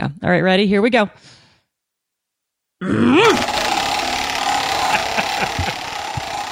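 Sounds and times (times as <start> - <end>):
speech: 0.0 - 1.4, 2.8 - 3.6
person grunting with strain imitating spinning a heavy wheel: 2.8 - 3.6
laughter: 3.3 - 6.4.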